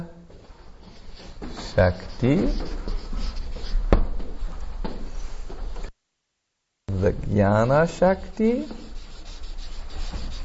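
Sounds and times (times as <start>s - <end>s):
pen scratching across a surface writing words: 0.9s - 3.9s, 8.6s - 10.4s
speech: 1.8s - 2.8s, 7.0s - 8.8s.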